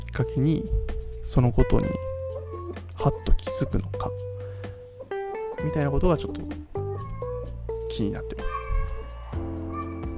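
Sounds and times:
speech: 0.2 - 2.1, 3.0 - 4.3, 5.6 - 6.7, 7.9 - 8.6
cat meowing: 2.4 - 2.8, 6.8 - 7.6, 8.4 - 10.1.

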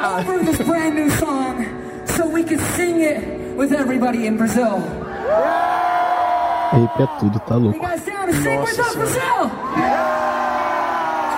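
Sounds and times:
speech: 0.0 - 5.8, 6.7 - 10.0
large concert crowd in Brazil cheering and yelling: 5.0 - 7.7, 9.5 - 11.3.

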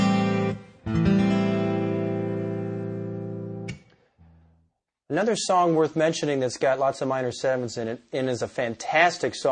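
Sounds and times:
guitar strumming an open A minor 7 chord: 0.0 - 3.8
speech: 5.1 - 9.5.

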